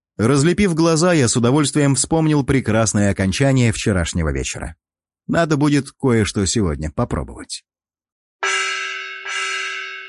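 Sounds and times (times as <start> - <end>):
speech: 0.2 - 7.7
alarm gong ringing across a camp: 8.4 - 10.0.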